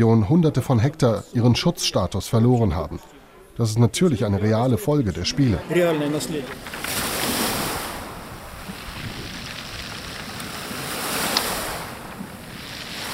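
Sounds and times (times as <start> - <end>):
speech: 0.0 - 7.0
sea waves washing over a pebble beach beside the Black Sea: 5.7 - 13.1
wind noise: 6.5 - 13.1.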